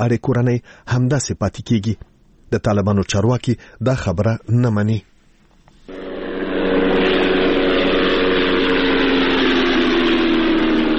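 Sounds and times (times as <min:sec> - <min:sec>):
speech: 0:00.0 - 0:05.1
unmanned drone flying over Ghazni Afghanistan: 0:05.9 - 0:10.9.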